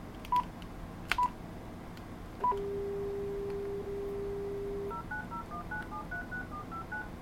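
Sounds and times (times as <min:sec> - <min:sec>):
smartphone keypad tones: 0:00.2 - 0:00.5, 0:02.4 - 0:07.1
quick alternating beeps of a smartphone placing a call: 0:02.4 - 0:07.1.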